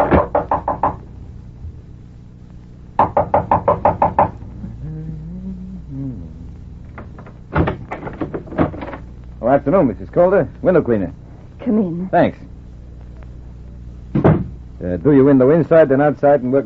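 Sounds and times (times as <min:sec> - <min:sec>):
firm knocking on a door: 0:00.0 - 0:01.0, 0:03.0 - 0:04.4, 0:14.1 - 0:14.5
faint low tonal hum: 0:00.0 - 0:16.6
speech: 0:09.6 - 0:12.5, 0:14.8 - 0:16.6.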